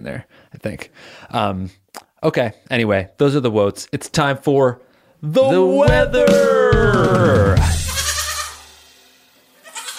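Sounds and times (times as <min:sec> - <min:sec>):
speech: 0:00.0 - 0:07.8
goat bleating loudly and raspily: 0:07.1 - 0:08.7, 0:09.6 - 0:09.9.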